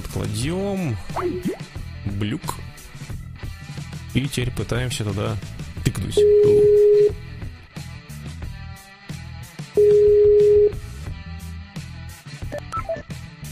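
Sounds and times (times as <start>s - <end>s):
speech: 0.2s - 2.7s, 4.2s - 7.2s
telephone call tones as a dropped call is redialled: 6.2s - 7.2s, 9.8s - 10.8s.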